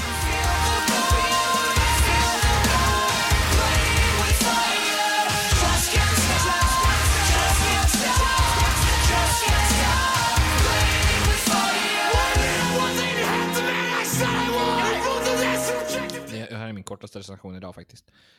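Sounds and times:
pounding drums in a metalcore song: 0:00.0 - 0:12.8
heavy distorted guitars in a metalcore song: 0:00.0 - 0:16.3
speech: 0:17.1 - 0:18.3.

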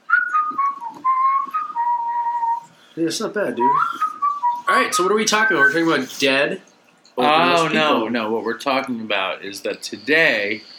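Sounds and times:
person whistling a short steady tune: 0:00.1 - 0:02.7, 0:03.6 - 0:04.7, 0:05.3 - 0:05.9
speech: 0:03.0 - 0:04.1, 0:04.7 - 0:10.7.

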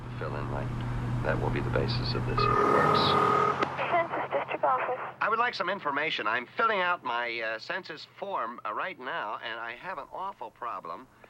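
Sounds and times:
steady low engine drone of car traffic: 0:00.0 - 0:05.2
speech: 0:00.2 - 0:03.6, 0:04.7 - 0:11.2
tinny talk-radio voices: 0:01.8 - 0:05.3.

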